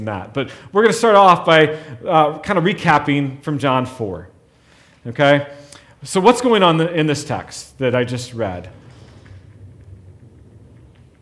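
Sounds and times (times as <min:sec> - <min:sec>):
speech: 0:00.0 - 0:04.3, 0:05.0 - 0:08.8
car passing outside, muffled through a wall or window: 0:08.2 - 0:11.2.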